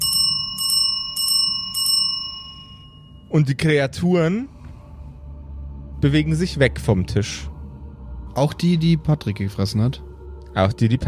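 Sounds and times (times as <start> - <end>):
reception desk bell ringing: 0.0 - 3.4
speech: 3.3 - 4.6, 6.0 - 7.5, 8.4 - 11.0.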